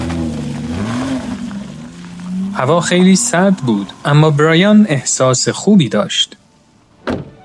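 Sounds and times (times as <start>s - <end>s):
car engine starting, revving and driving away: 0.0s - 5.4s
speech: 2.6s - 6.4s.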